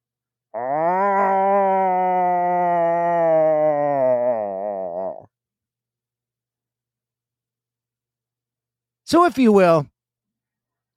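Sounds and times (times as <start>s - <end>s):
person imitating the pained howl of a dog: 0.6s - 5.3s
speech: 9.1s - 9.9s.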